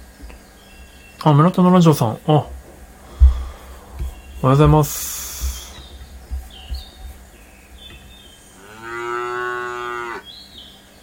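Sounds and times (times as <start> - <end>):
faint bird chirps: 0.0 - 8.7
speech: 1.2 - 2.6, 4.4 - 5.2
low thumps: 2.4 - 8.4
cow mooing: 8.6 - 10.3.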